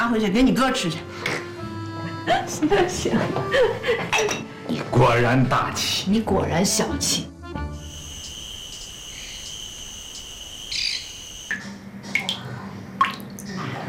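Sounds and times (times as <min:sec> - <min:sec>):
speech: 0:00.1 - 0:01.4, 0:02.3 - 0:07.7
laughter: 0:02.0 - 0:04.3
insect-like chirring: 0:07.8 - 0:11.7
water dripping from a faucet left dripping to save water: 0:11.5 - 0:13.6.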